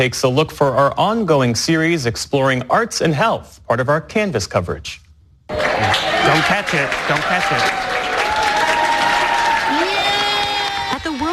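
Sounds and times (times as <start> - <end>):
speech: 0.0 - 7.9
room full of people cheering and whooping: 5.5 - 11.3
room full of people clapping: 5.5 - 11.3.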